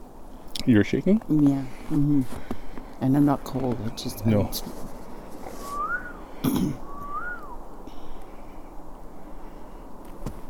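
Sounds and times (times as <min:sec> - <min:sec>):
steady outdoor hiss: 0:00.0 - 0:10.4
speech: 0:00.7 - 0:04.9, 0:06.4 - 0:06.8
whistled bird calls in the woods: 0:05.6 - 0:07.6.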